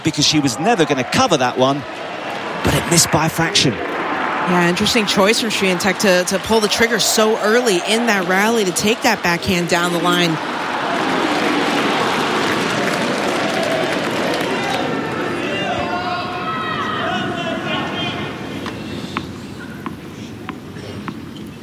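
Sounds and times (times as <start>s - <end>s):
speech: 0.0s - 2.0s, 2.6s - 3.9s, 4.5s - 10.6s
large tennis stadium crowd murmuring and chattering: 1.7s - 21.6s.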